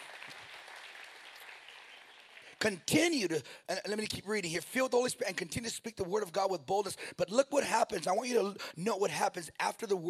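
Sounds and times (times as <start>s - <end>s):
crowd applause during a sermon: 0.0s - 2.7s
speech: 2.6s - 10.0s.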